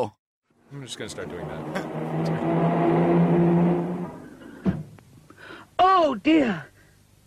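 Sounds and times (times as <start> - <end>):
speech: 0.0 - 2.7, 6.0 - 6.7
car engine humming: 0.6 - 6.5
thud of impact: 4.6 - 5.0.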